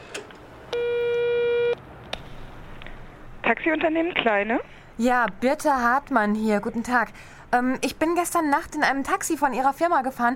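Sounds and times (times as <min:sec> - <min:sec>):
telephone ringing tone through a handset receiver: 0:00.8 - 0:01.8
speech: 0:03.5 - 0:10.3.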